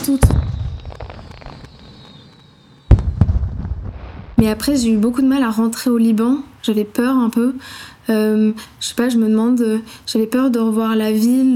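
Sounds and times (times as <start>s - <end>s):
loud firework booms: 0.0s - 1.9s, 2.9s - 5.6s
thin whistling streak of fireworks: 0.0s - 5.5s
crackling rumble of fireworks: 0.0s - 5.8s
speech: 0.1s - 0.6s, 4.4s - 11.5s.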